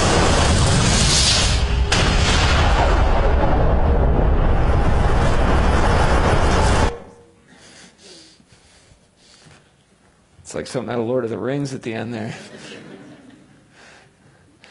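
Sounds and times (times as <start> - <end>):
massive deep roaring explosion boom effect depicting the Big Bang: 0.0 - 7.2
speech: 10.6 - 12.7
laughter: 12.3 - 13.7.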